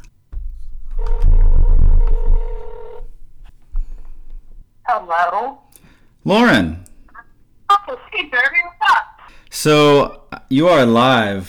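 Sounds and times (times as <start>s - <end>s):
electronic ringback tone of a phone call to a friend: 0.9s - 3.1s
speech: 5.0s - 5.6s, 6.2s - 6.9s, 7.9s - 11.4s.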